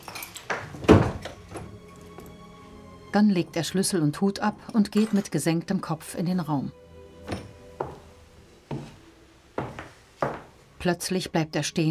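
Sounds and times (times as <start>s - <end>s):
door being shut in an inn room: 0.8s - 1.4s
speech: 3.1s - 7.4s, 10.8s - 11.8s.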